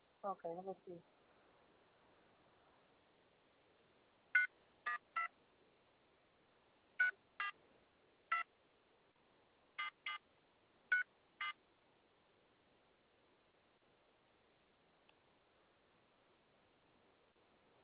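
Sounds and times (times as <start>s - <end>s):
speech: 0.2s - 1.2s
phone keypad tones as a phone number is dialed: 4.4s - 5.3s, 7.0s - 7.6s, 9.8s - 10.2s, 10.9s - 11.6s.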